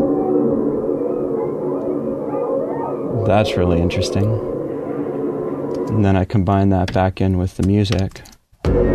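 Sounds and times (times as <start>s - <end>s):
grackle calls: 0.0s - 6.0s
speech: 3.3s - 4.5s, 5.9s - 8.8s.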